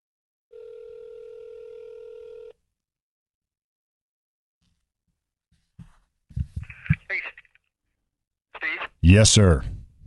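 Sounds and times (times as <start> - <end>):
telephone dial tone: 0.5 - 2.6
speech: 9.1 - 9.8.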